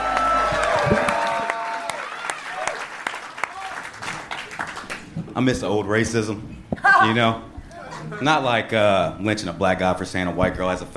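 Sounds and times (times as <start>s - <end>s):
audience applause for a comedian: 0.0s - 5.1s
speech: 5.4s - 7.5s, 8.1s - 10.9s.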